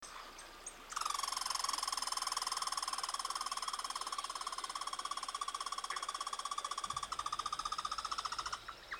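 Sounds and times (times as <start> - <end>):
red squirrel buzzing rattle chatter: 0.9 - 8.7.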